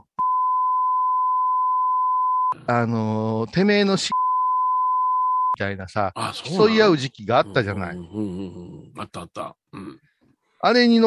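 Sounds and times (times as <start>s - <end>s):
censor bleep tone covering a name: 0.0s - 2.6s, 4.1s - 5.6s
speech: 2.5s - 4.2s, 5.6s - 11.0s.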